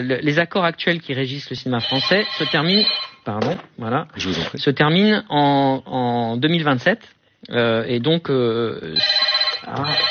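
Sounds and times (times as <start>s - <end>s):
speech: 0.0s - 10.0s
hotel room telephone ringing in Cannes: 1.8s - 3.3s, 9.0s - 10.0s.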